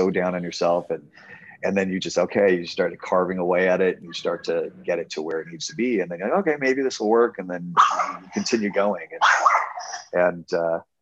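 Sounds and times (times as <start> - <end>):
speech: 0.1 - 10.9
dog barking: 7.8 - 8.4, 9.2 - 10.1
dog whimpering: 7.8 - 10.1.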